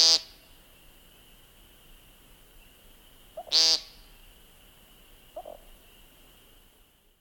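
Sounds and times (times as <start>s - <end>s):
American Woodcock harsh buzzy peent call: 3.4s - 4.1s, 5.3s - 5.8s.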